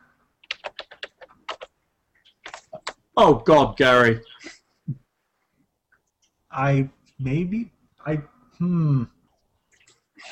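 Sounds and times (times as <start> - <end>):
computer keyboard typing during an online roleplaying game session: 0.4 - 1.7, 2.3 - 3.0
speech: 3.2 - 4.6, 6.6 - 9.2.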